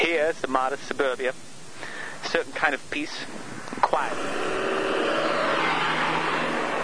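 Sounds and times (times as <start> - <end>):
speech: 0.0 - 4.8
car speeding past down the street: 3.9 - 6.8.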